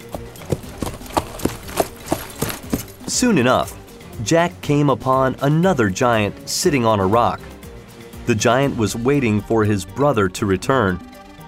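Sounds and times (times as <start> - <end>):
hooves of a ridden horse clip-clopping at a walking pace: 0.0 - 3.8
speech: 3.1 - 7.5, 8.3 - 11.1.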